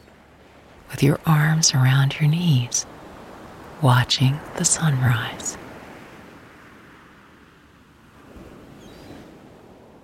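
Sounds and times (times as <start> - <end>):
ocean waves breaking on a secluded beach: 0.0 - 10.0
speech: 1.0 - 2.9, 3.8 - 5.6
faint high seabird chirps: 8.8 - 9.3.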